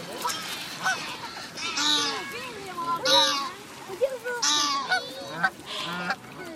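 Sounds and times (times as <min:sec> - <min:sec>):
Canada geese honking in overlapping nasal calls: 0:00.2 - 0:03.6, 0:04.4 - 0:06.3.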